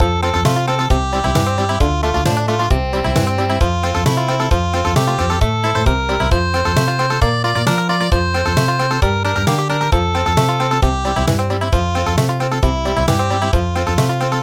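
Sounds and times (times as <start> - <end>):
traditional country MIDI music: 0.0 - 14.4.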